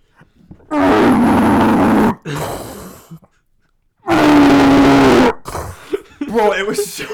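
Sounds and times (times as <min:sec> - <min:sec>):
person imitating a man's loud snoring: 0:00.7 - 0:03.3, 0:04.1 - 0:05.8
raspy breath: 0:02.1 - 0:03.7, 0:05.4 - 0:06.2
laughter: 0:05.8 - 0:07.1
speech: 0:06.4 - 0:07.1.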